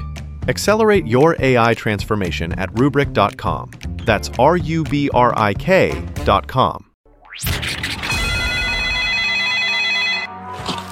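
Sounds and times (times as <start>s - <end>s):
speech: 0.5s - 7.7s
telephone ringing: 8.1s - 10.4s.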